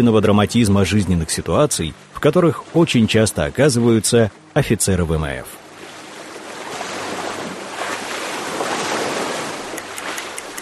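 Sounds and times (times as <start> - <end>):
speech: 0.0 - 5.6
rushing sea surf waves: 0.0 - 10.6
steady wind blowing over sea: 5.6 - 10.6.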